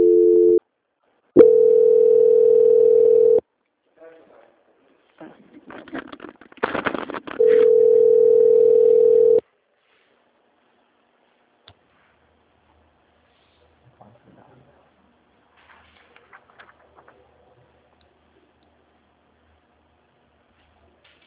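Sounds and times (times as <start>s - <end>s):
telephone transfer tone during a customer service call: 0.0s - 0.6s, 1.4s - 3.4s, 7.4s - 9.4s.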